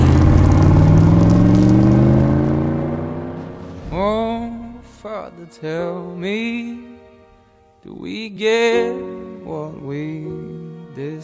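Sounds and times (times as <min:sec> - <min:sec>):
car engine revving and accelerating: 0:00.0 - 0:03.9
speech: 0:05.2 - 0:06.9, 0:07.8 - 0:11.2.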